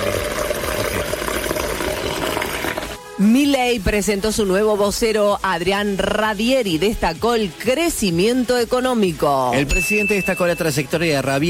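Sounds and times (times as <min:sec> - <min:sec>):
warm water running steadily from a tap: 0:00.0 - 0:03.0
speech: 0:03.2 - 0:11.4.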